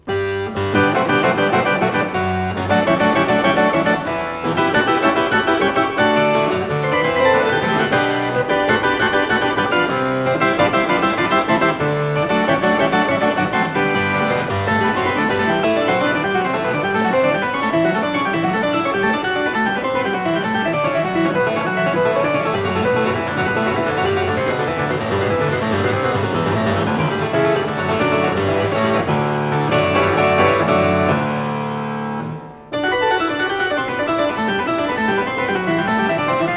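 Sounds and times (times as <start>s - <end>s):
harpsichord piece for one or two manuals: 0.0s - 36.5s.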